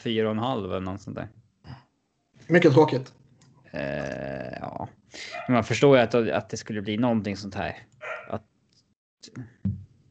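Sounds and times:
speech: 0.0 - 1.4, 2.5 - 8.5, 9.2 - 9.8
dog whining and yelping: 8.0 - 8.3.

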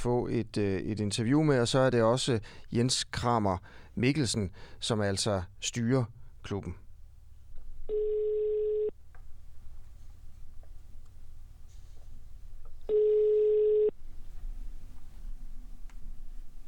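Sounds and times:
speech: 0.0 - 6.8
low hum: 0.0 - 16.6
telephone ringback tone: 7.9 - 8.9, 12.9 - 14.0.

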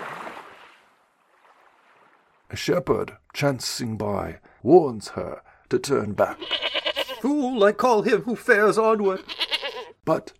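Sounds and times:
small waves of chill water lapping at the shore: 0.0 - 2.5
speech: 2.5 - 6.6, 7.2 - 9.4, 10.0 - 10.3.

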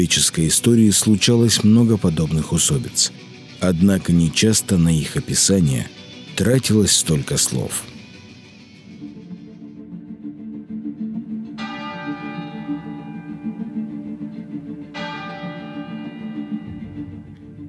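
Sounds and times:
church bell tolling: 0.0 - 7.9, 11.6 - 17.6
speech: 0.0 - 8.0.

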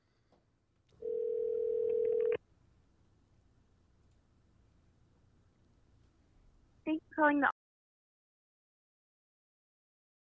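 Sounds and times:
steady electronic ring tone over a phone line: 1.0 - 2.4
speech: 7.2 - 7.6.

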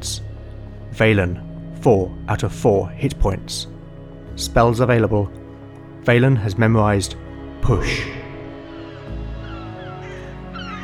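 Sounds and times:
speech: 1.0 - 3.8, 4.4 - 5.4, 6.0 - 8.2
gulls calling in a coastal town: 7.5 - 10.8.

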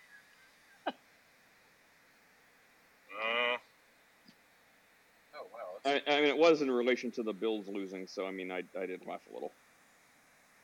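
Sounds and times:
goat screaming: 3.1 - 3.6
speech: 5.8 - 9.6.

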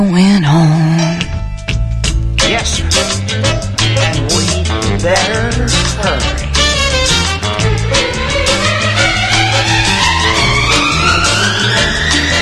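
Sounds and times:
busy music: 0.0 - 12.3
pickup truck engine roaring while speeding along a road: 2.8 - 12.3.

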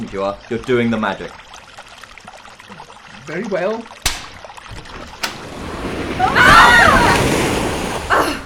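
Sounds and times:
water surging in a rushing swell: 0.0 - 8.4
speech: 0.1 - 1.5, 3.2 - 4.0, 6.2 - 7.4
sharp water splash: 4.0 - 8.2.

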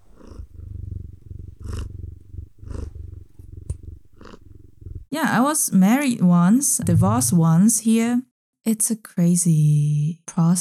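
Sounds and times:
female cat purring: 0.0 - 5.8, 6.8 - 7.6
speech: 5.1 - 10.5.

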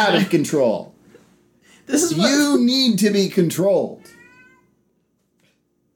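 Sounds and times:
speech: 0.0 - 1.0, 1.9 - 4.2
low steady hum: 0.0 - 5.9
cat meowing from inside a closet: 4.0 - 4.7.

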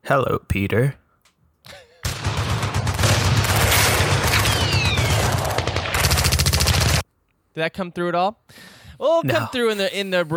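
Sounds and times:
speech: 0.1 - 1.0, 7.6 - 10.3
battlefield booms: 2.0 - 6.2
rapid steady rattle of machine-gun fire: 2.0 - 7.0
battlefield rifle shots: 2.1 - 7.0.

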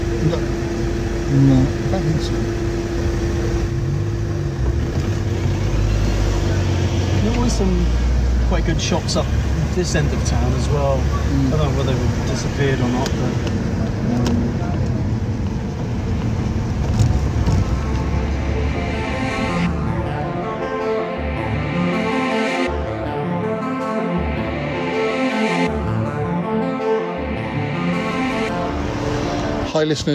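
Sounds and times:
low rumble of engines and traffic in a car park: 0.0 - 20.2
speech: 1.3 - 2.8, 7.6 - 14.4, 29.8 - 30.1
vehicle passing in a car park: 5.2 - 23.2, 24.2 - 30.1.

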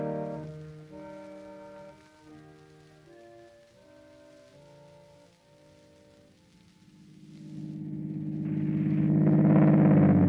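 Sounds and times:
steady tonal hum: 6.9 - 10.2
car engine revving as the car is driven off: 7.0 - 10.2.

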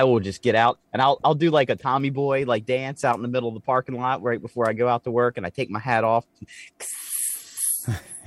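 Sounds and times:
speech: 0.0 - 7.1, 7.8 - 8.1
voice imitating spray-on sunscreen aerosol hissing: 6.5 - 8.2.

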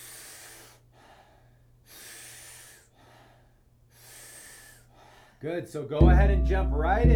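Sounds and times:
powerful breaths in through the mouth lying on the back: 0.0 - 5.4
speech: 5.4 - 7.1.

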